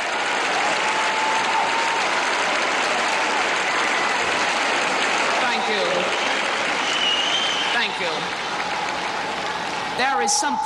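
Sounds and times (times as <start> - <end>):
large convention crowd applauding: 0.0 - 10.6
speech: 10.0 - 10.6.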